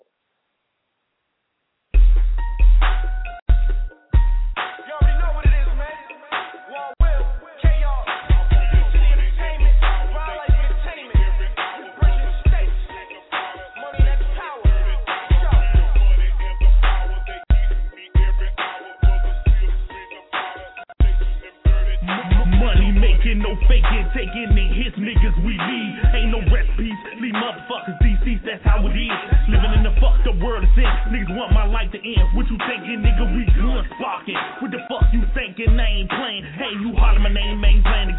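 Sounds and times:
hip-hop track with heavy booming bass played back through a phone line: 0:02.0 - 0:38.1.

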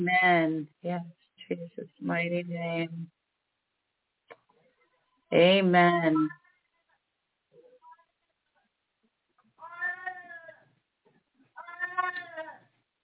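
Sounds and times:
speech: 0:00.0 - 0:03.2, 0:05.3 - 0:06.4
old cat meowing: 0:09.6 - 0:10.6, 0:11.6 - 0:12.6.

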